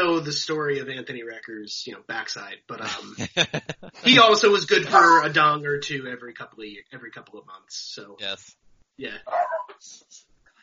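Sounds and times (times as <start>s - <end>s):
speech: 0.2s - 10.3s
laughter: 2.8s - 5.2s
dog barking: 9.3s - 9.7s
dog yipping and whining: 9.3s - 9.8s.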